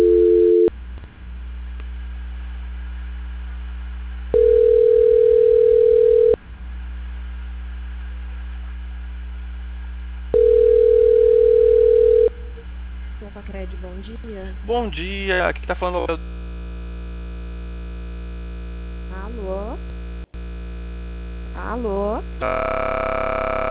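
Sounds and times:
telephone line tone while a call is being transferred: 0.0s - 0.7s, 4.3s - 6.4s, 10.3s - 12.6s, 22.4s - 23.7s
constant low telephone line hum: 0.0s - 23.7s
speech: 14.9s - 16.4s, 21.8s - 23.2s.

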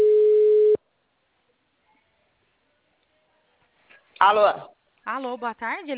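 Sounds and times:
electronic telephone ringing tone: 0.0s - 0.8s
speech: 4.2s - 5.9s.

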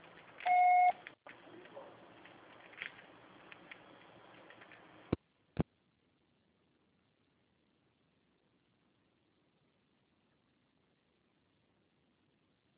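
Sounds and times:
electronic beep from a telephone answering machine: 0.4s - 1.0s.

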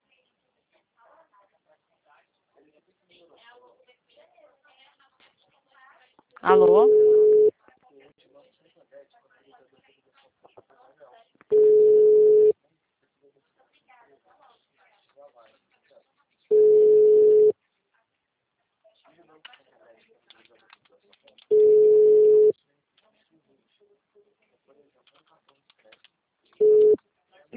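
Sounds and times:
speech: 6.4s - 7.0s
busy-style telephone tone after a dropped phone call: 6.6s - 7.5s, 11.5s - 12.5s, 16.5s - 17.5s, 21.5s - 22.5s, 26.6s - 27.0s.

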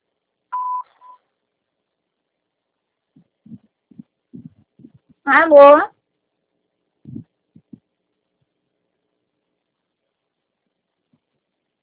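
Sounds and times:
voicemail beep before recording a message: 0.6s - 1.2s
short low-pitched bursts: 3.2s - 5.5s, 7.0s - 7.8s
speech: 5.3s - 5.9s.

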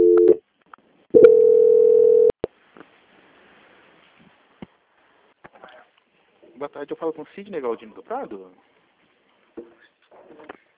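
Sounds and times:
telephone call-transfer tone: 0.0s - 0.4s, 1.2s - 2.4s
speech: 6.8s - 8.8s.

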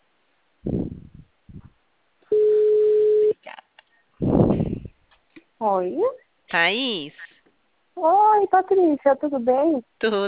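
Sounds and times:
ringback tone of an outgoing telephone call: 2.3s - 3.4s
speech: 5.6s - 7.3s, 8.0s - 10.2s.

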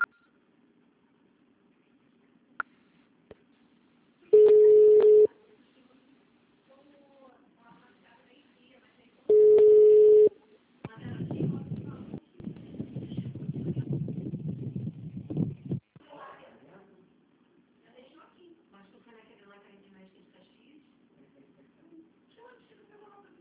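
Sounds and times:
telephone voicemail beep signal: 0.0s - 0.3s, 4.4s - 5.3s, 9.3s - 10.3s.

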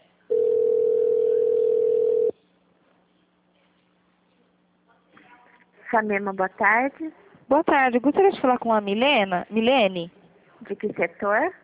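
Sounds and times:
steady mid-pitched telephone line tone while a call is transferred: 0.3s - 2.4s
speech: 5.9s - 11.6s.

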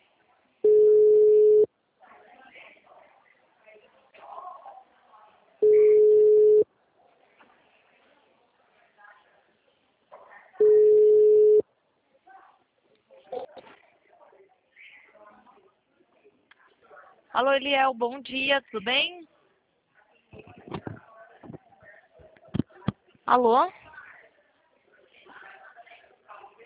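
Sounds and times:
ringback tone of an outgoing telephone call: 0.6s - 1.7s, 5.6s - 6.6s, 10.6s - 11.6s
speech: 17.4s - 19.3s, 23.3s - 23.8s.

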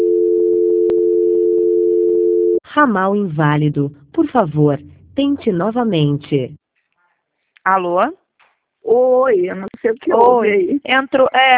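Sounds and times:
steady telephone tone during a call transfer: 0.0s - 2.6s
speech: 2.8s - 6.6s, 7.6s - 8.2s, 8.8s - 11.5s.

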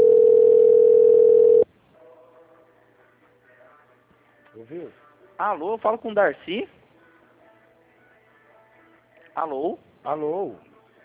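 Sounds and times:
ringback tone of an outgoing telephone call: 0.0s - 1.6s
speech: 5.4s - 6.8s, 9.4s - 11.0s.

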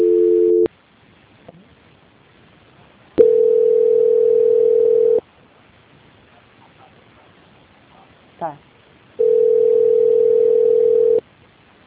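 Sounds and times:
steady telephone line tone during a call transfer: 0.0s - 0.7s, 3.2s - 5.2s, 9.2s - 11.2s.

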